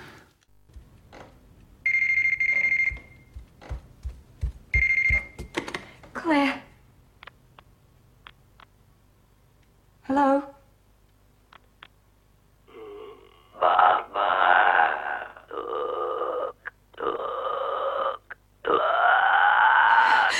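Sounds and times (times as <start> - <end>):
woman's footsteps walking to the phone: 0.6 - 1.5, 2.4 - 6.2
telephone bell ringing: 1.9 - 3.2, 4.8 - 5.4
monstrous guttural croaking voice over a phone line: 12.7 - 20.3.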